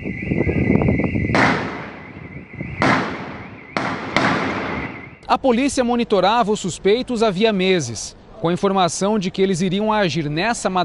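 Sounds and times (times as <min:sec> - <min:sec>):
rumbling noisy background: 0:00.0 - 0:10.8
gunshots in a police shootout: 0:01.3 - 0:05.2
speech: 0:05.3 - 0:10.8.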